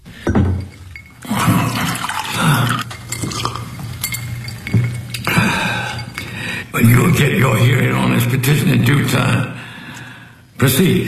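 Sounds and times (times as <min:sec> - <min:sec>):
water splashing from a glass in a courtroom: 0:00.0 - 0:08.9
low steady hum: 0:00.0 - 0:11.0
glass clinking in a courtroom: 0:00.1 - 0:07.8
speech: 0:07.2 - 0:09.6, 0:10.6 - 0:11.0.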